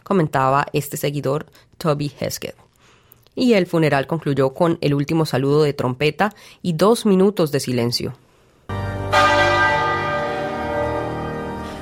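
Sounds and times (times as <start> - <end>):
speech: 0.1 - 2.7, 3.4 - 8.2
clock tower bell tolling in London: 9.1 - 11.8.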